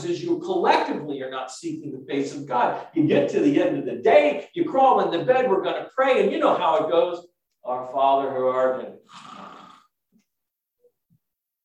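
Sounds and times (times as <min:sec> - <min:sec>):
speech: 0:00.0 - 0:09.5
person imitating snoring: 0:09.0 - 0:09.9.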